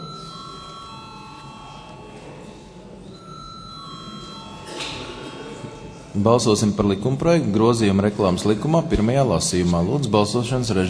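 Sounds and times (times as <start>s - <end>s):
electric call bell ringing in a parliament calling deputies to a vote: 0.0s - 2.4s, 3.1s - 6.0s
faint murmur in a parliament: 0.0s - 10.8s
speech: 6.2s - 10.8s.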